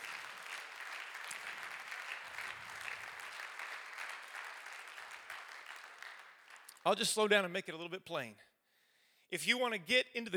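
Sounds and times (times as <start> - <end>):
congregation clapping: 0.0 - 7.5
speech: 6.8 - 8.5, 9.3 - 10.3.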